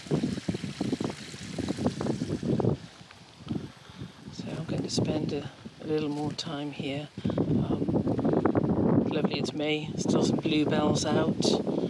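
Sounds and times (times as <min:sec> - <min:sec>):
water trickling outdoors from a village well: 0:00.0 - 0:02.9
gusts of wind buffeting the microphone: 0:00.0 - 0:11.8
speech: 0:04.9 - 0:07.8, 0:09.1 - 0:11.8.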